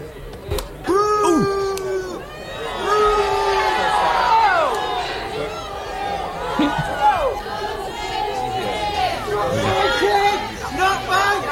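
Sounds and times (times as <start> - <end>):
shouting and chatter: 0.0 - 11.5
protester yelling: 0.9 - 2.2
large crowd booing at a man: 0.9 - 11.5
laughter: 6.1 - 11.4.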